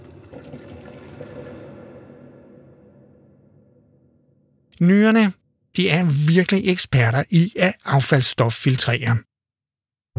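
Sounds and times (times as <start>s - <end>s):
water pouring through a coffee filter: 0.0s - 2.6s
speech: 4.8s - 9.3s.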